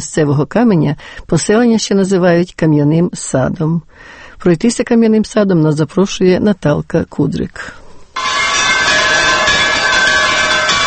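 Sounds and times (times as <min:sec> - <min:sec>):
speech: 0:00.0 - 0:08.3
church bells ringing: 0:08.2 - 0:10.8.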